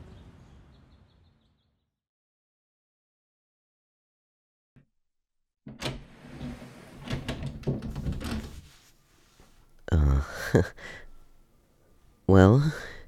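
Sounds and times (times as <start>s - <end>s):
door closing and locking shut: 5.7s - 8.7s
speech: 10.5s - 11.0s, 12.3s - 12.9s
breathy exhale: 10.8s - 11.2s.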